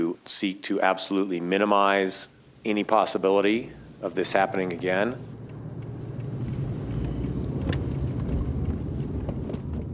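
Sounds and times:
speech: 0:00.2 - 0:05.3
car driving around Firestone, Colorado, road and engine rumble: 0:02.3 - 0:09.9
faint ticks and rattles: 0:03.6 - 0:09.9.

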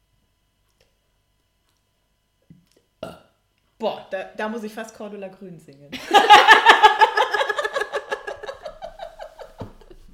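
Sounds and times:
smaller gulping throaty sounds: 0:02.5 - 0:03.4
person burping after swallowing air: 0:03.0 - 0:03.4
speech: 0:03.8 - 0:06.6
laughter: 0:06.0 - 0:10.0.

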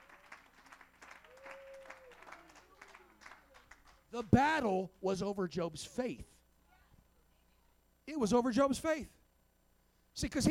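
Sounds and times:
church audience clapping in rhythm giving praise to God: 0:00.0 - 0:04.4
speech: 0:04.1 - 0:06.3, 0:08.2 - 0:09.2, 0:10.2 - 0:10.5.

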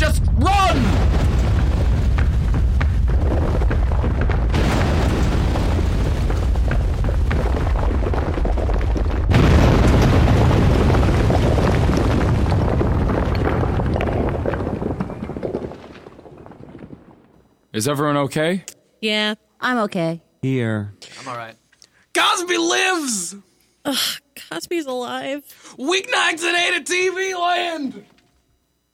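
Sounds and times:
building exploding with a roaring rumble: 0:00.0 - 0:17.3
speech: 0:17.8 - 0:21.6, 0:22.2 - 0:28.1.

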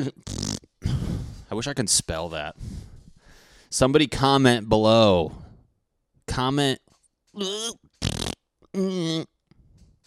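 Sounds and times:
speech: 0:00.0 - 0:00.3, 0:01.5 - 0:02.8, 0:03.7 - 0:05.4, 0:06.3 - 0:07.8, 0:08.7 - 0:09.3
person blowing mouth-made fart noises: 0:00.0 - 0:01.0, 0:07.4 - 0:09.3.

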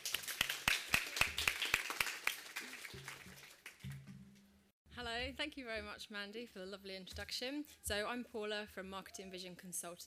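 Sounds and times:
audience applauding: 0:00.0 - 0:04.1
speech: 0:05.1 - 0:10.0.

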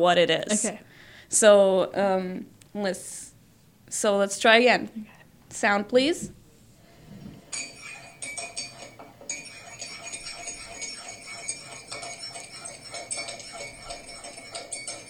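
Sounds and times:
speech: 0:00.0 - 0:03.3, 0:03.9 - 0:06.4
spoon stirring a cup of tea: 0:07.4 - 0:15.0.

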